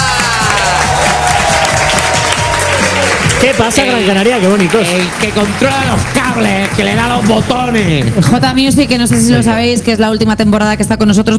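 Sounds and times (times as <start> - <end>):
loud applause from a large audience: 0.0 - 8.4
crowd noise: 0.0 - 10.1
speech: 3.4 - 11.3.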